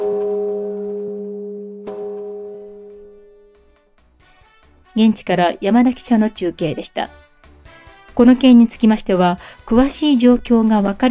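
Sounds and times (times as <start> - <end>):
deep temple bell ringing: 0.0 - 3.6
speech: 5.0 - 7.2, 8.2 - 11.0.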